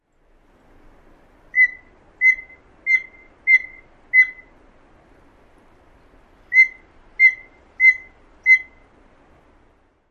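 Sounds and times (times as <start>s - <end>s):
Steller's Jay piping worry call: 1.5s - 4.5s, 6.5s - 8.8s.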